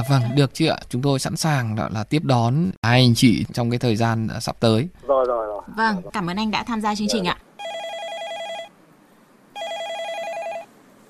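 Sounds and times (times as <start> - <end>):
speech: 0.0 - 7.5
telephone ringing with a trilling electronic bell: 7.6 - 8.7, 9.6 - 10.7.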